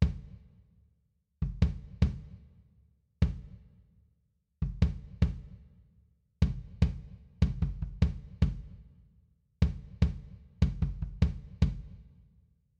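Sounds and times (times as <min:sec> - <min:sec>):
kick drum: 0:00.0 - 0:00.4, 0:01.4 - 0:02.4, 0:03.2 - 0:03.6, 0:04.6 - 0:05.6, 0:06.4 - 0:08.8, 0:09.6 - 0:12.0.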